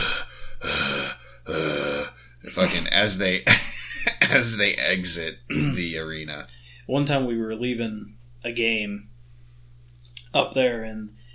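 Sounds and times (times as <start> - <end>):
voice imitating heavy raspy mouth-breathing: 0.0 - 2.5
speech: 2.6 - 9.1, 10.3 - 11.2.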